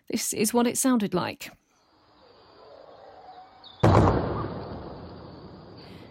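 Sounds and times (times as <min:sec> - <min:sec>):
steady outdoor hiss: 0:00.0 - 0:06.0
speech: 0:00.1 - 0:01.6
sonic boom from a Eurofighter Typhoon jet over Kent, England: 0:03.8 - 0:05.8.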